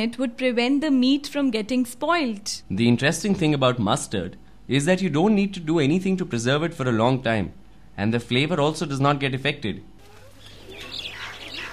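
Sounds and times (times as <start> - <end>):
speech: 0.0 - 9.9
low hum: 0.0 - 11.7
birds chirping at dusk returning to nests: 10.0 - 11.7.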